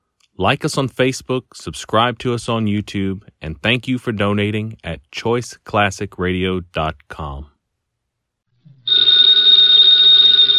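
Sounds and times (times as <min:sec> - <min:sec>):
speech: 0:00.4 - 0:07.5
telephone bell ringing: 0:08.9 - 0:10.5.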